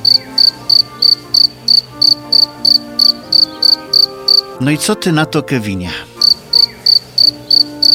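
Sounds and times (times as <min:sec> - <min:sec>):
cricket chirping: 0:00.0 - 0:04.5, 0:06.2 - 0:07.9
speech: 0:00.2 - 0:02.8, 0:04.6 - 0:07.9.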